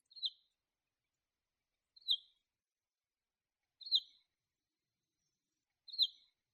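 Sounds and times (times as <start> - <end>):
sparrow calling: 0.0 - 0.5, 2.0 - 2.4, 3.8 - 4.3, 5.9 - 6.5.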